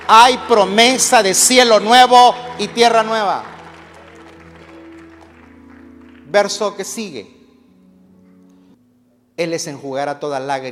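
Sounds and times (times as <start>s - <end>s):
audience applause: 0.0s - 6.4s
speech: 0.1s - 3.5s, 6.3s - 7.4s, 9.4s - 10.6s.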